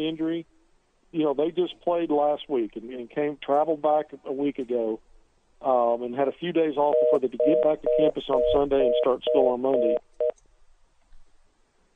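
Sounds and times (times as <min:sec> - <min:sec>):
speech: 0:00.0 - 0:10.0
low hiss: 0:00.0 - 0:11.9
faint phone-line clicks like a caller hanging up: 0:06.9 - 0:10.4.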